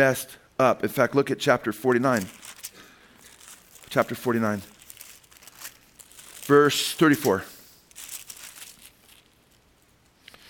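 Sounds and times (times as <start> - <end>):
speech: 0.0 - 2.4, 3.9 - 4.7, 6.5 - 7.5
paper book pages being flipped: 2.1 - 10.4.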